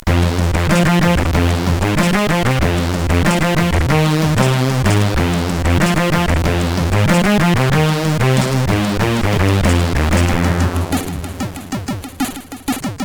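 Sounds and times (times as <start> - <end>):
SID chip CSG8580R5 synth bass jingle: 0.1 - 12.9.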